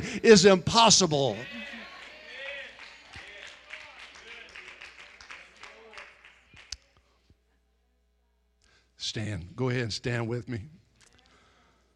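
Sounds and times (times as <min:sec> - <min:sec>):
speech: 0:00.1 - 0:01.6, 0:09.1 - 0:10.8
crowd voices and shouts: 0:01.0 - 0:04.1
audience clapping: 0:01.3 - 0:06.9.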